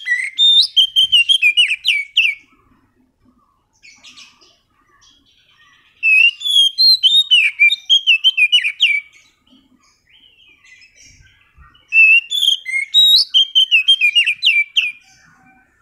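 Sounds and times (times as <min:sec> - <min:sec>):
Oriental magpie-robin master song used as a lure: 0:00.0 - 0:15.8.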